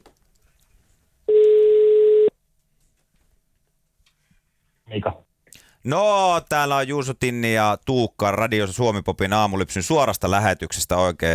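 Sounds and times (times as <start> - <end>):
steady mid-pitched telephone ringback tone: 1.3 - 2.3
speech: 4.9 - 5.2, 5.8 - 11.3.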